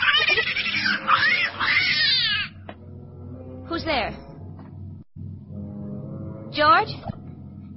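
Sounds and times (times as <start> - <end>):
cat yowling: 0.0 - 2.6.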